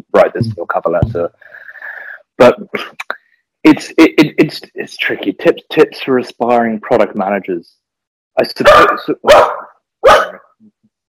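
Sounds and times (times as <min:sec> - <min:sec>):
speech: 0:00.0 - 0:01.6, 0:02.4 - 0:07.8, 0:08.4 - 0:10.7
dog barking: 0:08.7 - 0:10.5
dog yelping: 0:08.8 - 0:10.4.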